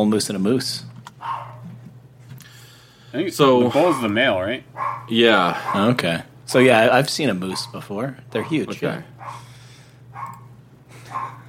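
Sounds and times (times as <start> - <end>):
speech: 0.0 - 1.4, 3.1 - 9.4
steady low hum: 0.0 - 11.4
faint dog barks at rain: 1.2 - 1.7, 3.8 - 4.2, 4.8 - 6.0, 7.5 - 7.8, 8.4 - 9.5, 11.1 - 11.4.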